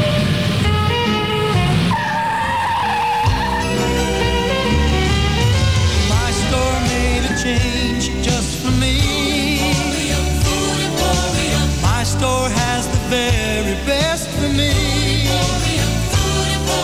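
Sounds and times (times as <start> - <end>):
truck tires squealing: 0.0 - 12.7
busy layered noise: 0.0 - 16.8
truck engine roaring off: 0.0 - 16.8.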